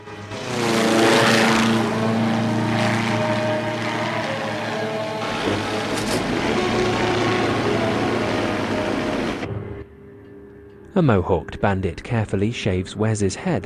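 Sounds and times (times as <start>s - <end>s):
gyrocopter engine and rotor droning in flight: 0.0s - 10.3s
speech: 11.0s - 13.6s.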